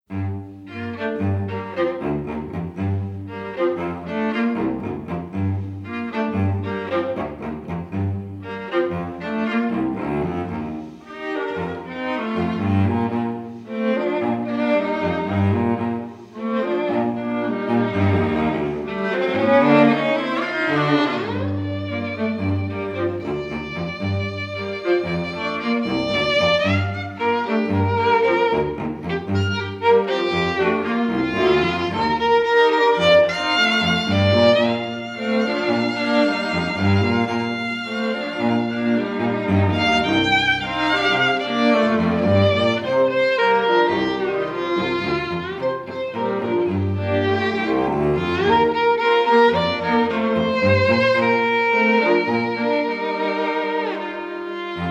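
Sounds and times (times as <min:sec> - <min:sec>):
string quartet playing a spiritual: 0:00.0 - 0:54.8.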